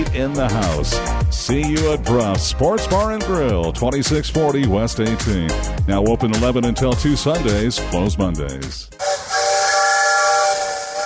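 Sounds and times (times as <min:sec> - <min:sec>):
speech: 0:00.1 - 0:09.1
steam train whistle from a community club's excursion train: 0:09.0 - 0:11.0.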